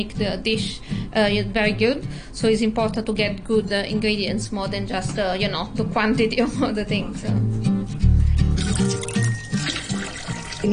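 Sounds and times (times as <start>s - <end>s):
speech: 0.0s - 7.6s
water pouring into a pan for pasta: 8.6s - 10.7s.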